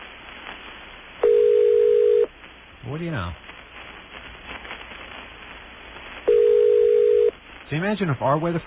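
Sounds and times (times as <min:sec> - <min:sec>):
telephone ringback tone over a noisy phone line: 0:01.2 - 0:02.3, 0:06.3 - 0:07.3
speech: 0:02.9 - 0:03.5, 0:07.7 - 0:08.6.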